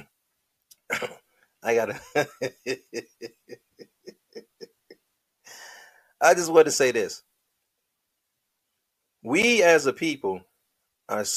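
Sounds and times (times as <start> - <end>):
person clearing throat: 0.8 - 1.2
speech: 1.0 - 3.7, 6.2 - 7.3, 9.2 - 10.5, 11.1 - 11.3
laughter: 1.7 - 4.9.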